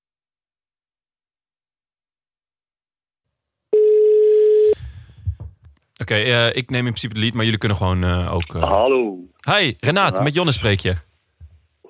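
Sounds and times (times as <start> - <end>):
telephone dial tone as a call is placed: 3.8 - 4.8
speech: 6.0 - 11.1.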